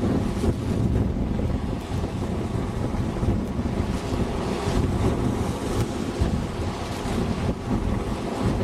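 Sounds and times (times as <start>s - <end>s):
waves washing in on shore: 0.0s - 8.6s
wind buffeting the microphone: 0.0s - 8.6s.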